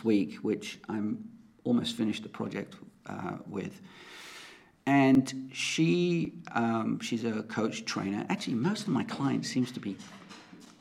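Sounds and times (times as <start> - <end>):
speech: 0.0 - 10.4
dog's paws going down stairs: 9.9 - 10.7.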